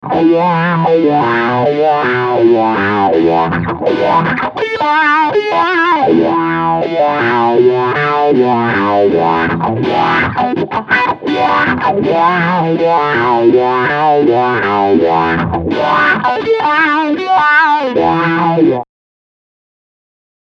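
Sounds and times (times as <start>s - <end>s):
auto wah effect: 0.0s - 18.8s.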